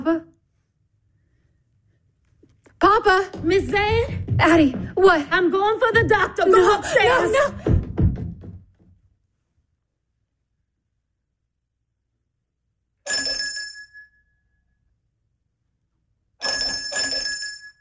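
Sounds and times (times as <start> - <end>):
speech: 0.0 - 0.3, 3.0 - 7.7
dull knock or thump: 3.3 - 6.3, 7.3 - 9.0
laughter: 6.1 - 7.7
doorbell ringing with a bright metallic tone: 16.4 - 17.7.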